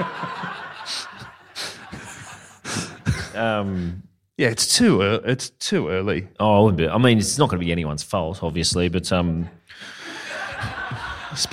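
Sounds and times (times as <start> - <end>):
laughter: 0.0 - 4.0, 9.7 - 11.5
father breathing in and out: 0.9 - 4.0, 9.7 - 10.5
speech: 3.4 - 10.0, 10.6 - 11.5.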